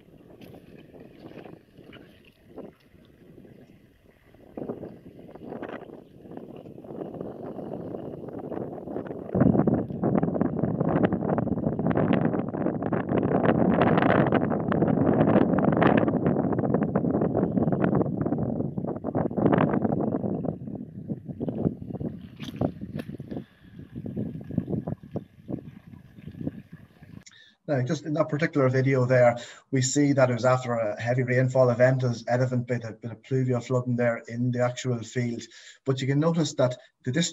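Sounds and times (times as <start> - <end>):
strong wind buffeting a microphone outdoors: 0.0 - 29.4
speech: 27.8 - 37.3.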